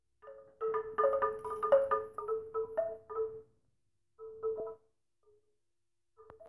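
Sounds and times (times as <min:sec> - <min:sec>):
wind chimes: 0:00.2 - 0:03.6, 0:04.2 - 0:04.8.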